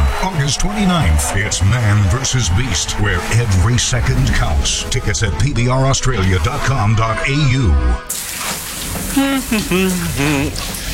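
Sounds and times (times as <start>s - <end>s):
speech: 0.2s - 10.8s
shower water running: 8.1s - 10.9s
person calling out loudly: 9.1s - 10.7s.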